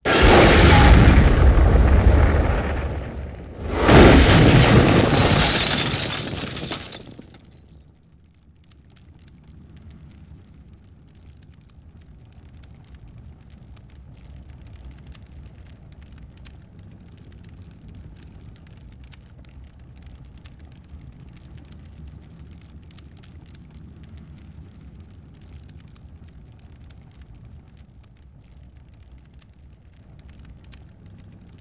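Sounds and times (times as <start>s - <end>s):
multiple explosions: 0.0s - 7.4s
debris scattering: 0.0s - 7.8s.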